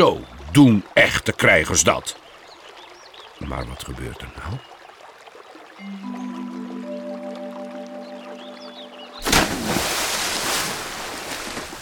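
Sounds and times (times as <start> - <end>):
speech: 0.0 - 2.2, 3.4 - 4.7
sustained layered musical chord: 5.8 - 9.2
water churning and sloshing as a canoe drifts away: 8.9 - 11.8
person falling into water between a canoe and the bank: 9.2 - 11.8.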